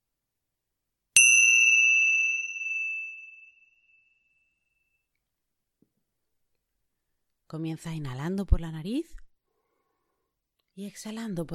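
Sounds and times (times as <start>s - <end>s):
small bell struck at the start of a guided meditation: 1.2s - 5.0s
speech: 7.5s - 9.2s, 10.8s - 11.5s.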